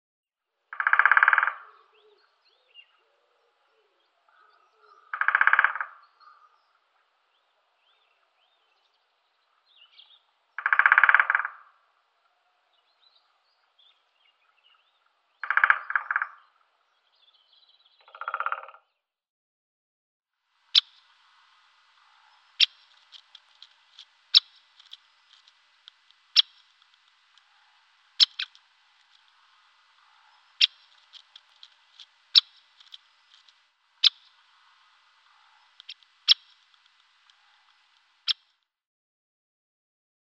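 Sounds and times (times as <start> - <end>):
great spotted woodpecker Dendrocopos major: 0.7 - 3.3, 4.3 - 6.8, 9.8 - 11.9, 13.9 - 16.6, 18.0 - 18.8, 20.7 - 21.1, 22.0 - 38.6.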